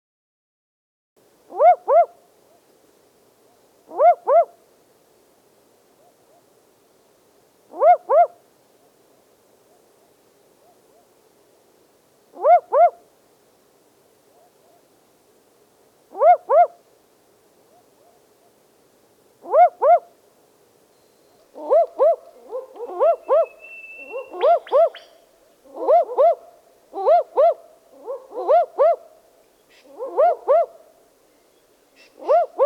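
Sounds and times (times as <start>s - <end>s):
barking owl calling: 1.5s - 2.6s, 3.9s - 4.6s, 7.7s - 8.4s, 12.3s - 13.1s, 16.1s - 16.8s, 19.4s - 20.2s, 21.0s - 30.9s, 31.5s - 32.6s.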